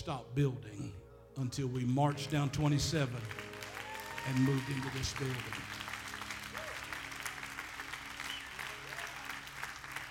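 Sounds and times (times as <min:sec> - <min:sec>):
speech: 0:00.0 - 0:03.4, 0:04.2 - 0:05.8
room full of people applauding: 0:03.0 - 0:10.0.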